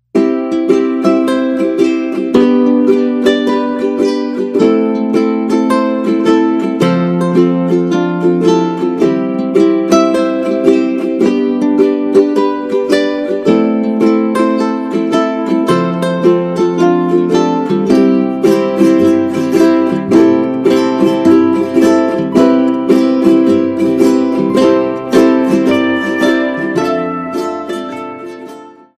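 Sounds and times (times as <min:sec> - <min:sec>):
ukulele beach ringtone: 0:00.1 - 0:28.9.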